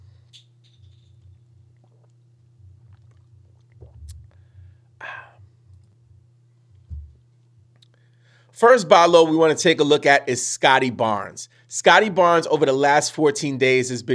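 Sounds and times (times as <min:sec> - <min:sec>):
steady low hum: 0:00.0 - 0:08.4
person sipping and swallowing water: 0:01.7 - 0:05.5
speech: 0:08.6 - 0:14.1.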